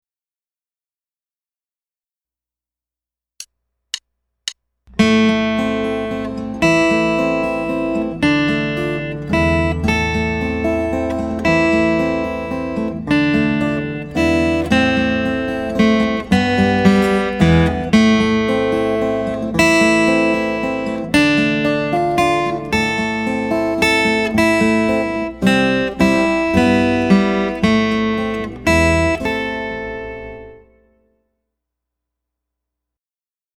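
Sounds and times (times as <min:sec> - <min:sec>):
minor key melody: 0:04.4 - 0:31.1.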